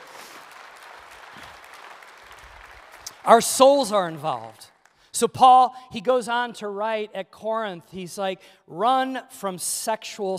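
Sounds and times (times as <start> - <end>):
audience applause: 0.0 - 3.4
speech: 3.2 - 10.3.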